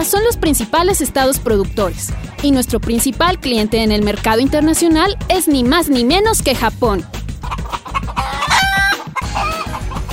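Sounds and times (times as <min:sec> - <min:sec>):
speech: 0:00.0 - 0:07.2
barnyard chickens clucking: 0:07.3 - 0:10.1
rooster crowing: 0:08.0 - 0:09.9.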